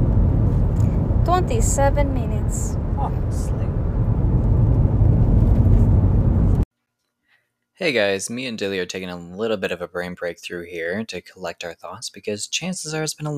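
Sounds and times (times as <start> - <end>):
road noise rumble inside a moving car: 0.0 - 6.6
speech: 1.3 - 3.6, 7.8 - 13.3.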